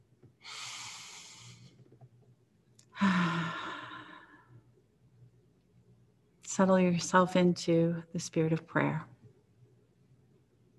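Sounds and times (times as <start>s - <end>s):
person taking a deep breath before a prayer: 0.4s - 1.7s, 3.0s - 4.5s
speech: 6.6s - 9.1s.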